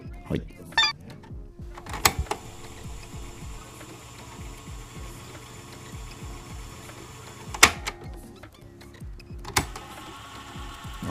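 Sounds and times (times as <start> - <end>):
speech: 0.3 - 0.8
radio-cassette player mechanism whirring while playing a cassette tape: 1.6 - 11.0
cassette tape being ejected: 1.8 - 8.6, 9.4 - 11.0.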